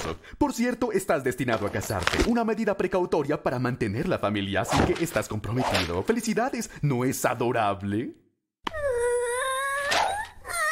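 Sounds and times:
speech: 0:00.0 - 0:08.8
infant son's loud whining howl: 0:08.8 - 0:10.6.

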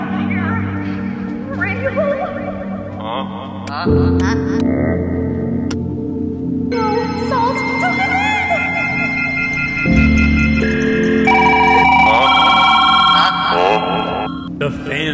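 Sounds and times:
steady low drone: 0:00.0 - 0:14.7
speech: 0:01.9 - 0:05.4
telephone ringing with layered warbling electronic tones: 0:06.8 - 0:14.5.

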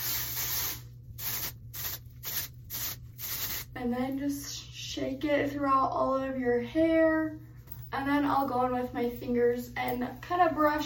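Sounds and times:
aerosol dry shampoo sprayed into the top of the hair: 0:00.0 - 0:03.7
speech: 0:03.8 - 0:10.8.

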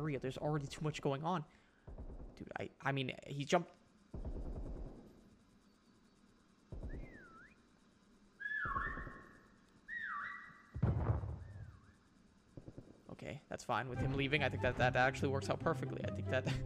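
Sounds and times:
speech: 0:00.0 - 0:04.3, 0:13.3 - 0:16.6
loud thumping bursts: 0:01.8 - 0:02.6, 0:04.1 - 0:05.3, 0:06.7 - 0:07.3, 0:10.8 - 0:11.8
whistle tooting in short bending blasts: 0:06.9 - 0:07.6, 0:08.4 - 0:10.7.

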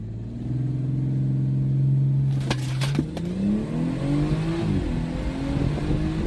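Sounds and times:
BMW 340 engine accelerating from 0 to 60 on stock tune: 0:00.0 - 0:06.2.

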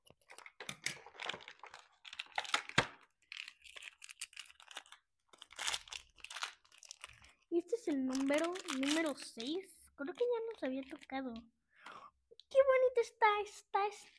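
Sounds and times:
packaging tearing: 0:00.2 - 0:07.4, 0:08.0 - 0:09.4
speech: 0:07.6 - 0:11.6, 0:12.6 - 0:14.1.

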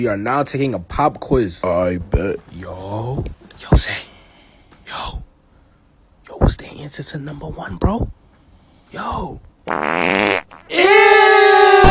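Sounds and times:
speech: 0:00.0 - 0:04.1, 0:06.4 - 0:08.2, 0:08.9 - 0:11.6
loud buzzy fart noises: 0:09.7 - 0:10.7.

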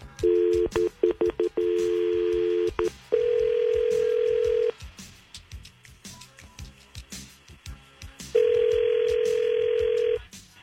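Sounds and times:
touch-tone dialing beeps as a phone call is placed: 0:00.2 - 0:04.7, 0:08.4 - 0:10.2.

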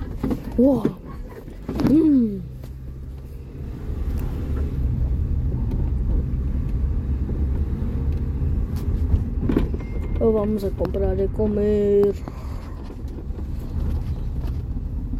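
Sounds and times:
pickup truck engine rumbling while driving: 0:00.0 - 0:15.1
speech: 0:00.6 - 0:01.0, 0:01.9 - 0:02.5, 0:10.3 - 0:12.4.

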